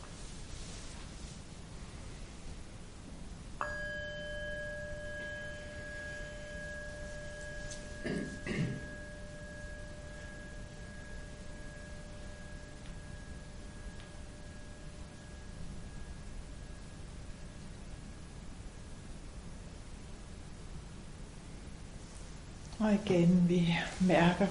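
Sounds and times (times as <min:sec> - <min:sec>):
steady hiss: 0:00.0 - 0:24.4
single bell strike with pure sustained tone: 0:03.6 - 0:17.0
speech: 0:22.8 - 0:24.4.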